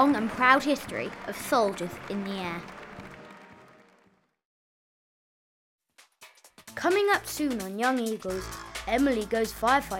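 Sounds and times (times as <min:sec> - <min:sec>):
speech: 0:00.0 - 0:02.8, 0:06.8 - 0:09.9
crowd of friends and family applauding: 0:00.0 - 0:04.4.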